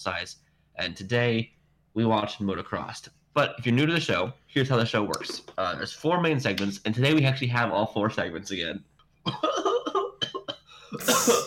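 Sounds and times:
speech: 0.0s - 9.6s, 10.9s - 11.4s
harsh noisy cough: 9.3s - 11.4s
person laughing: 9.3s - 11.4s.

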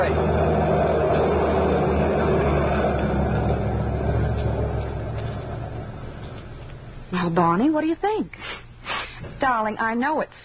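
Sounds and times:
speech: 0.0s - 0.2s, 7.2s - 10.4s
heavy truck engine rumbling while driving past: 0.0s - 7.8s.

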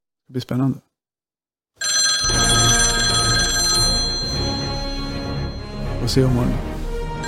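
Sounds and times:
speech: 0.3s - 0.9s, 6.1s - 6.7s
telephone ringing tone while a call is placed: 1.8s - 5.9s.

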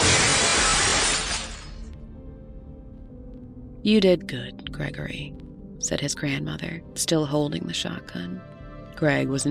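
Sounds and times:
mirrors shattering all at once: 0.0s - 1.9s
speech: 3.8s - 9.4s.

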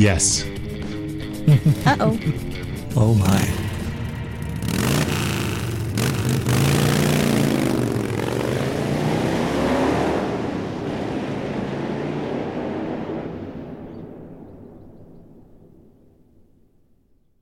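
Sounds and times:
speech: 0.0s - 0.6s, 1.5s - 3.6s
laughter: 1.2s - 3.3s
motorcycle engines revving: 3.3s - 13.9s.

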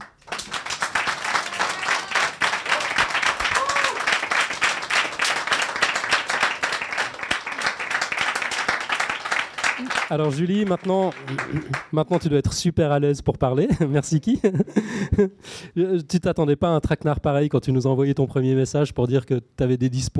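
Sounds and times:
group applauding: 0.0s - 12.3s
speech: 10.1s - 20.1s
laughter: 10.7s - 11.9s, 13.7s - 15.4s.

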